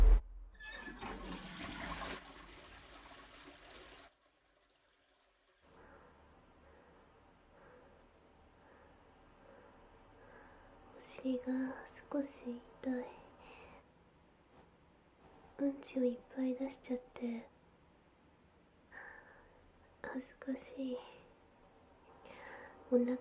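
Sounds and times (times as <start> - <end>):
toilet being flushed with loud rushing water: 0.0 - 5.6
faint trickling water: 0.6 - 5.8
speech: 11.2 - 13.2, 15.6 - 17.5, 20.1 - 21.2, 22.9 - 23.1.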